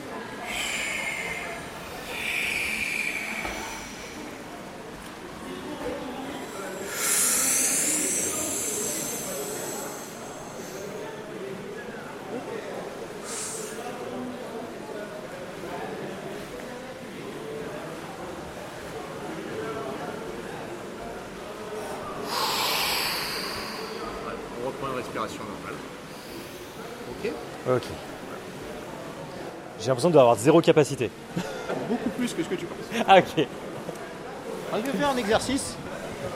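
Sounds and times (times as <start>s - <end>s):
steady low noise: 0.0s - 36.3s
full breath exhaled slowly during a breathing exercise: 0.4s - 4.8s, 6.4s - 11.2s, 13.2s - 14.0s, 21.8s - 24.4s
speech: 27.7s - 28.0s, 29.8s - 33.6s, 34.7s - 35.8s.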